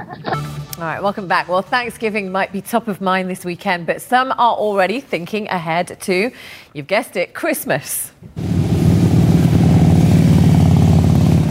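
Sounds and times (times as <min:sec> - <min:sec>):
speech: 0:00.1 - 0:08.5
several motorcycle engines running together: 0:08.4 - 0:11.4.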